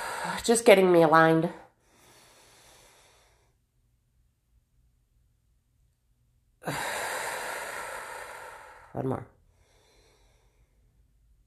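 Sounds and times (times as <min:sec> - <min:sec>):
breathing during a 4-7-8 breathing exercise: 0:00.0 - 0:00.4, 0:01.7 - 0:03.6, 0:06.6 - 0:11.0
speech: 0:00.2 - 0:01.6, 0:09.0 - 0:09.3.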